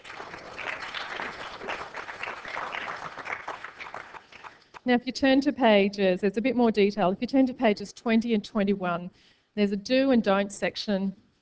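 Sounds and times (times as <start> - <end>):
audience applause: 0.0 - 4.8
speech: 4.8 - 11.2.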